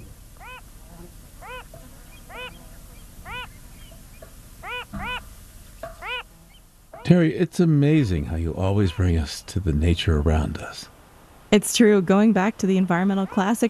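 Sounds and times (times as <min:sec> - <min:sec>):
Wilson's phalarope calling from a salt lake: 0:00.0 - 0:00.7, 0:01.4 - 0:03.9, 0:04.6 - 0:05.3, 0:06.0 - 0:07.1
low steady hiss: 0:00.0 - 0:13.6
speech: 0:07.1 - 0:10.9, 0:11.5 - 0:13.6.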